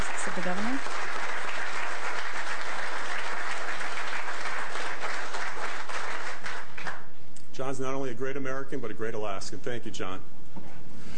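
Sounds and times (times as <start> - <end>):
large audience applause: 0.0 - 7.1
speech: 0.3 - 1.2, 7.6 - 10.4.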